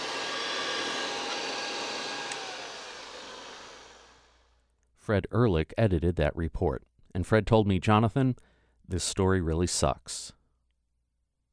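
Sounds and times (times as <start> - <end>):
1935 Airway vacuum cleaner running: 0.0 - 4.5
speech: 5.1 - 10.4.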